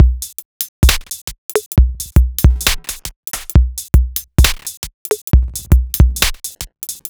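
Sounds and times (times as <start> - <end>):
dubstep drum loops with break at 135 BPM: 0.0 - 7.0.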